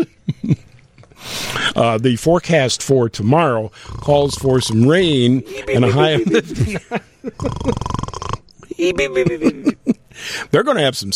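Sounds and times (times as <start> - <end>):
speech: 1.8 - 11.1
human voice imitating snoring: 3.7 - 6.0, 7.4 - 8.4
laughter: 5.3 - 7.9, 8.6 - 10.0.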